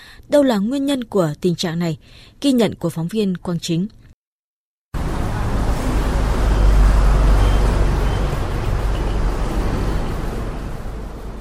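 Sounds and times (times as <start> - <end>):
speech: 0.3 - 4.0
heavy road traffic on National Highway 5 in Hai Duong province Vietnam: 5.0 - 11.3
large trucks passing: 5.0 - 11.3.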